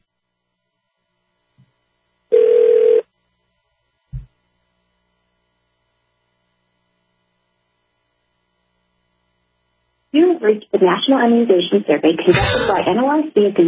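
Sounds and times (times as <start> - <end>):
telephone ringback tone: 2.3 - 3.1
speech: 10.4 - 13.6.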